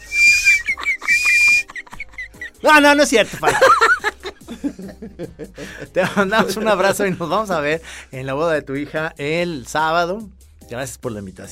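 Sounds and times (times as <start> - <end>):
breathy lip whistles: 0.0 - 2.6
short chirpy squeaks: 0.0 - 2.7
laughter: 0.3 - 7.3
speech: 2.6 - 4.0, 5.2 - 11.5.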